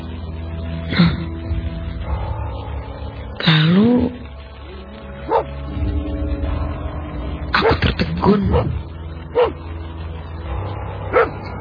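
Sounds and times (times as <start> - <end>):
steady low rumble: 0.0 - 11.6
dog barking: 5.3 - 5.5, 7.6 - 9.6, 11.1 - 11.4.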